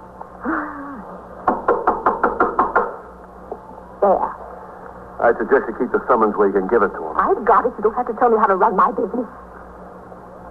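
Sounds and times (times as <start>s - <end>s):
knocking on a door: 1.4s - 3.1s
speech: 4.0s - 4.4s, 5.2s - 9.5s.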